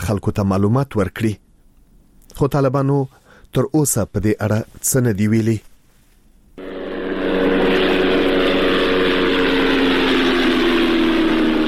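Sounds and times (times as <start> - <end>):
speech: 0.1 - 1.4, 2.4 - 5.7
unmanned drone aircraft flying overhead in Ghazni province, Afghanistan: 6.6 - 11.6.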